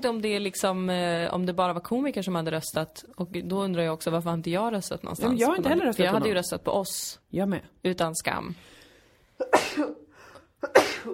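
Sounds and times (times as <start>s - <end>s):
speech: 0.0s - 8.8s, 9.4s - 10.0s, 10.6s - 11.1s
sharp inhale: 8.6s - 9.4s, 10.1s - 10.5s
sneeze: 9.4s - 11.1s.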